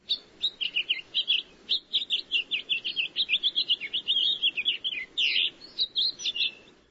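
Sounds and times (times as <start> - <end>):
house finch warbling song: 0.0 - 6.8.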